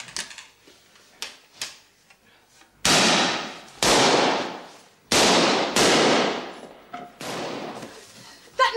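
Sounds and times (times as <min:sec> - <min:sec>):
gunshots fired in a great hall: 0:02.8 - 0:07.9.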